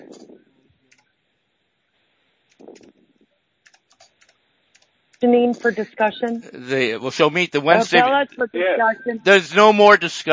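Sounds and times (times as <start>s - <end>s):
computer keyboard typing: 3.6s - 5.3s
speech: 5.2s - 10.3s.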